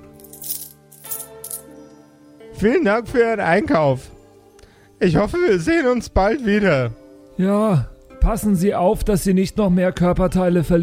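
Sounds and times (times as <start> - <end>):
coins thrown into a drawer: 0.0 - 1.7
speech: 2.6 - 4.1, 5.0 - 10.8.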